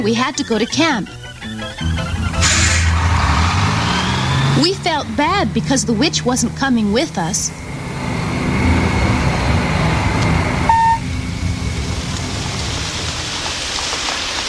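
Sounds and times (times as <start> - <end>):
speech: 0.0 - 2.3, 4.6 - 7.6
low rumble: 1.8 - 14.1
steady rain falling: 2.1 - 6.5, 9.8 - 14.4
brief beep: 10.6 - 11.1.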